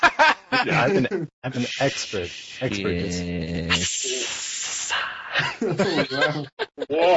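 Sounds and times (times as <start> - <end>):
laughter: 0.0 - 1.3, 5.4 - 7.1
speech: 0.6 - 4.1, 5.0 - 7.1
voice imitating a cobra hiss: 1.5 - 5.3.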